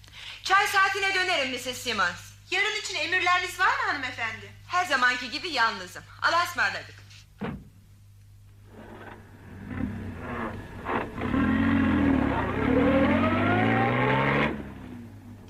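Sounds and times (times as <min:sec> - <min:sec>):
speech: 0:00.7 - 0:07.6
short thump: 0:07.4 - 0:07.8
car engine humming: 0:08.6 - 0:15.4.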